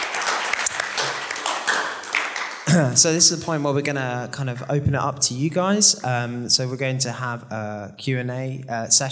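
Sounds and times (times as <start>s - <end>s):
crowd applauding: 0.0s - 3.4s
speech: 2.7s - 9.0s.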